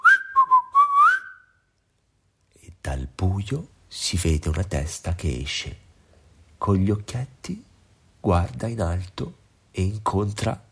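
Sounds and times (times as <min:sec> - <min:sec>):
person whistling a tune: 0:00.0 - 0:01.6
speech: 0:02.9 - 0:05.8, 0:06.6 - 0:10.6.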